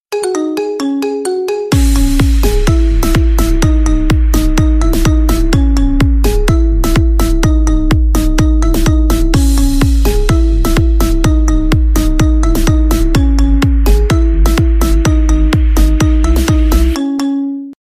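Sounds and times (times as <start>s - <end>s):
marimba ringtone: 0.1s - 17.8s.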